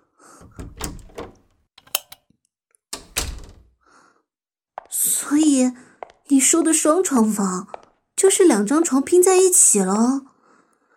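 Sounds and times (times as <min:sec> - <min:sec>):
solid wooden door thunk: 0:00.4 - 0:01.5, 0:03.0 - 0:03.7
door handle rattling: 0:00.4 - 0:02.2, 0:03.0 - 0:03.7
speech: 0:05.3 - 0:05.8, 0:06.4 - 0:10.3.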